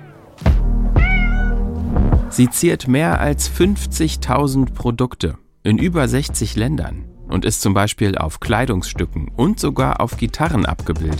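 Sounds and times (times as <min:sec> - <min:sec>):
kitten meowing: 0:01.0 - 0:01.7
speech: 0:02.4 - 0:11.1.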